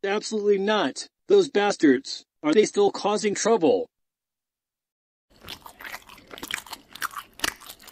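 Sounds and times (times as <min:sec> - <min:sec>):
speech: 0:00.0 - 0:03.9
biting and chewing berries picked off bushes: 0:05.3 - 0:07.8.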